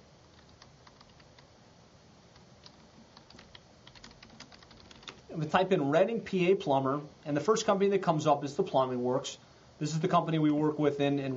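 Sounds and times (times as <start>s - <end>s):
typing on a computer keyboard while entering a search query: 0.3s - 1.5s, 2.3s - 5.2s
speech: 5.4s - 11.3s.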